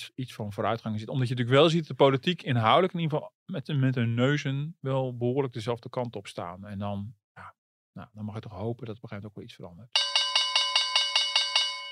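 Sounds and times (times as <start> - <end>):
speech: 0.0 - 10.2
bright bell strikes: 10.0 - 11.8.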